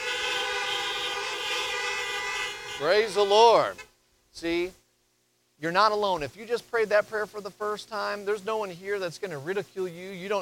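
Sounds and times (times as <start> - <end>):
many car horns honking in a parking lot: 0.0 - 4.0
speech: 2.8 - 4.8, 5.6 - 10.3.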